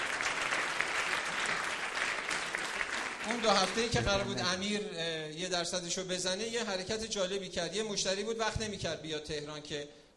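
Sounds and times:
crowd applauding: 0:00.0 - 0:04.8
speech: 0:03.3 - 0:10.1.

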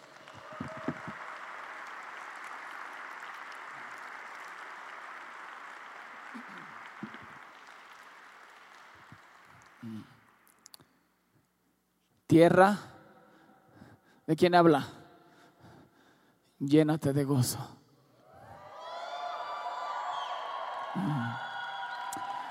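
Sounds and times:
audience applauding: 0:00.0 - 0:10.7, 0:18.6 - 0:22.4
speech: 0:12.3 - 0:12.9, 0:14.3 - 0:15.0, 0:16.6 - 0:17.8.

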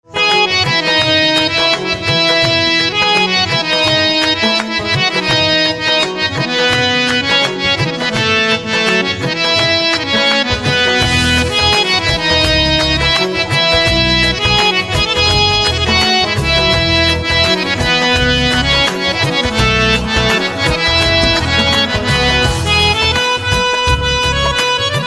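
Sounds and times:
instrumental harmonium ringtone: 0:00.1 - 0:25.0.

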